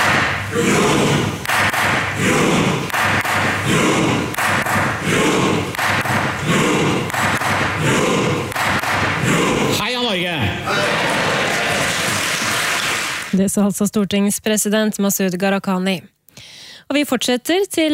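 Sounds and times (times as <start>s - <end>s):
gavel strikes in the Norwegian parliament: 0.0s - 9.7s
large crowd noise in the Norwegian parliament: 0.0s - 13.3s
speech: 0.5s - 1.1s, 13.5s - 17.9s.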